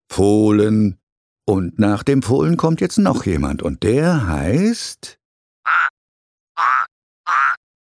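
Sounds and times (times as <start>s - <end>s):
speech: 0.2s - 5.2s
frog croaking: 5.6s - 6.0s, 6.6s - 7.6s.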